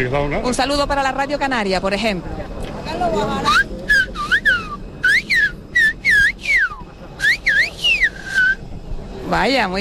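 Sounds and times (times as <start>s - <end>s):
speech: 0.0s - 3.8s, 9.3s - 9.7s
man whistling a message in Silbo Gomero whistled language: 3.5s - 8.6s.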